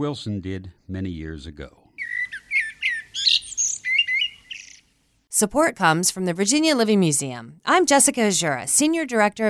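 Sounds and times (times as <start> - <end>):
speech: 0.0 - 1.8, 5.4 - 9.4
warbler singing chirps and trills: 2.0 - 4.9.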